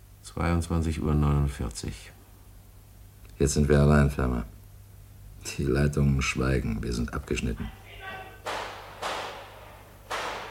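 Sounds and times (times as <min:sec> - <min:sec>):
low steady hum: 0:00.0 - 0:10.4
speech: 0:00.3 - 0:02.2, 0:03.4 - 0:04.6, 0:05.4 - 0:07.8
gunshots: 0:08.4 - 0:10.4.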